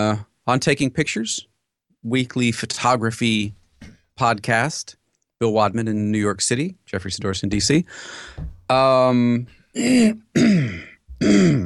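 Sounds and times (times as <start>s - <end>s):
speech: 0.0s - 11.6s
person clearing throat of mucus: 9.7s - 11.6s.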